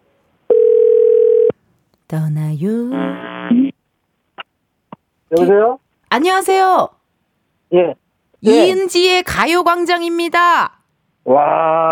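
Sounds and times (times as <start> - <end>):
telephone ringback tone: 0.5 - 1.5
speech: 2.1 - 3.6, 5.3 - 7.0, 7.7 - 11.9.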